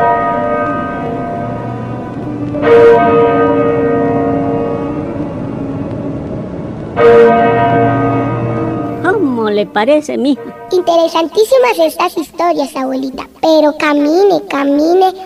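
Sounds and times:
stolen parish church bell striking: 0:00.0 - 0:13.4
speech: 0:09.7 - 0:15.2.

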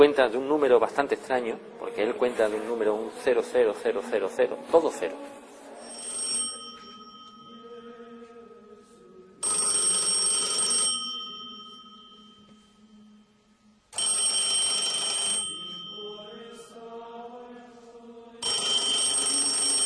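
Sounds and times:
speech: 0:00.0 - 0:05.4
telephone ringing in bright trilling bursts: 0:05.8 - 0:07.8, 0:09.4 - 0:12.5, 0:14.0 - 0:16.5, 0:18.4 - 0:19.8.

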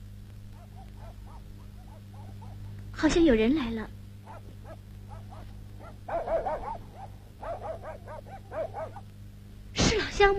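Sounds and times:
low steady hum: 0:00.0 - 0:10.3
dog barking: 0:00.5 - 0:02.8, 0:04.2 - 0:09.1
speech: 0:03.0 - 0:04.0, 0:10.2 - 0:10.3.

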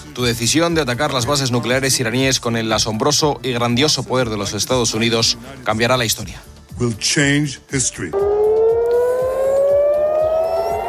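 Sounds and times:
speech: 0:00.2 - 0:08.3
air raid sirens sounding in Jerusalem and Tel Aviv: 0:08.2 - 0:10.8.

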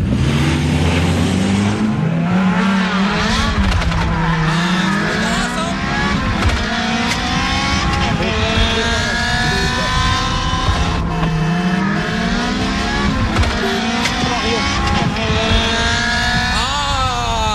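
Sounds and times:
car engine revving hard: 0:00.0 - 0:17.5.

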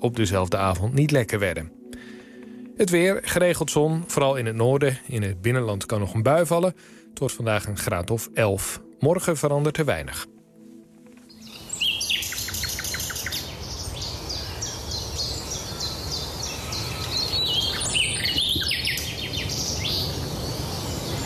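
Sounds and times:
speech: 0:00.0 - 0:02.2, 0:02.8 - 0:10.4
nightingale singing: 0:11.2 - 0:21.2.

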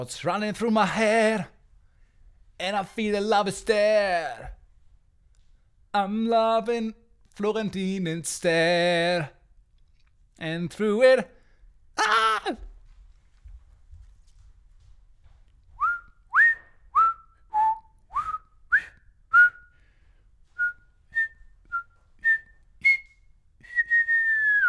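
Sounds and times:
speech: 0:00.0 - 0:01.6, 0:02.6 - 0:04.6, 0:06.0 - 0:09.4, 0:10.4 - 0:11.4, 0:12.0 - 0:12.7
person whistling a tune: 0:15.8 - 0:19.8, 0:20.5 - 0:24.6.

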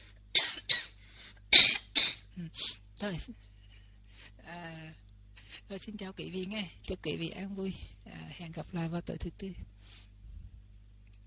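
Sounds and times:
faint low hum: 0:00.0 - 0:11.2
person with a cold coughing, set off by speaking: 0:00.4 - 0:02.6
speech: 0:02.4 - 0:03.5, 0:04.5 - 0:05.0, 0:05.7 - 0:09.7.

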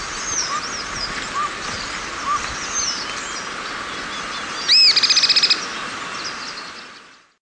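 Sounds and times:
steady background hiss: 0:00.0 - 0:07.3
bird chirps and short whistles: 0:04.7 - 0:05.6.

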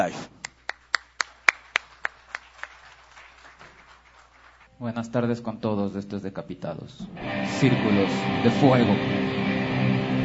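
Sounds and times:
speech: 0:00.0 - 0:00.3, 0:04.8 - 0:09.7
hand claps as applause for performers on a stage: 0:00.4 - 0:04.7.

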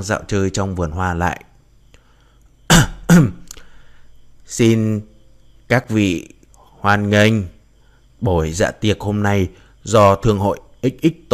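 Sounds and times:
speech: 0:00.0 - 0:01.5, 0:04.5 - 0:05.1, 0:05.7 - 0:07.6, 0:08.2 - 0:11.3
man in his forties coughing lightly: 0:02.7 - 0:03.5.

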